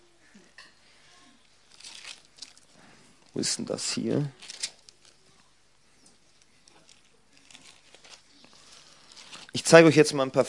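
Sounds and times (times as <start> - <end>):
book pages being turned while looking for verses: 1.6 - 9.8
speech: 3.4 - 4.5, 9.7 - 10.4.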